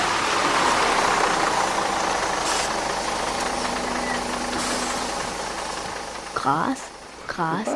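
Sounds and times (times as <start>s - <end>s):
bus engine droning during ride: 0.0s - 7.7s
road noise of a moving bus: 0.0s - 7.7s
speech: 6.4s - 7.7s.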